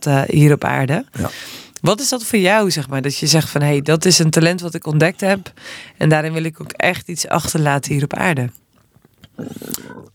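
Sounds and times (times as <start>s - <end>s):
speech: 0.0s - 8.6s, 9.4s - 10.1s
stomach growling: 9.0s - 10.1s.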